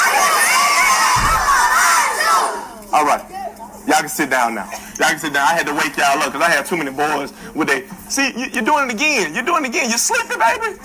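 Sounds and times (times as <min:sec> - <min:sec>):
group of children shouting in unison: 0:00.0 - 0:02.8
speech: 0:03.0 - 0:10.8.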